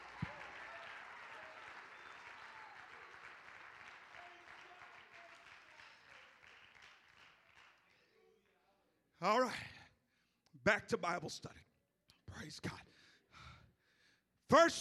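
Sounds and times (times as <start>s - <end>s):
audience clapping hands in dense applause: 0.0s - 7.9s
speech: 9.2s - 9.8s, 10.6s - 11.6s, 12.4s - 12.9s, 14.5s - 14.7s.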